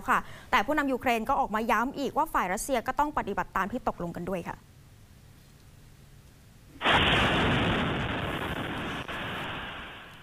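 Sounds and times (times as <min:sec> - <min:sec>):
speech: 0:00.0 - 0:04.7
explosion from an air strike on a residential area in Kharkiv, northern Ukraine: 0:06.8 - 0:10.2.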